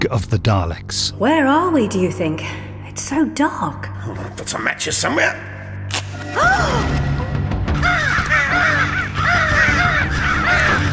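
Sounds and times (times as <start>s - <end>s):
speech: 0.0s - 5.5s, 6.2s - 7.0s
flock of crows cawing harshly: 7.7s - 10.9s.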